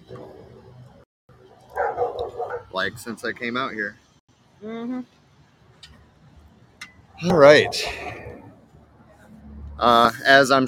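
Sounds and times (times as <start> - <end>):
neighbor's dog barking: 1.7 - 2.7
speech: 2.7 - 4.0, 4.6 - 5.2, 7.2 - 8.2, 9.8 - 10.6.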